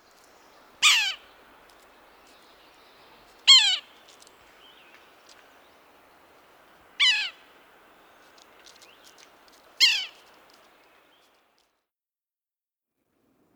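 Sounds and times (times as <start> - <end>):
Yellow-bellied sapsucker giving harsh nasal mewing calls: 0.8 - 1.3, 3.4 - 3.9, 7.0 - 7.4, 9.8 - 10.2.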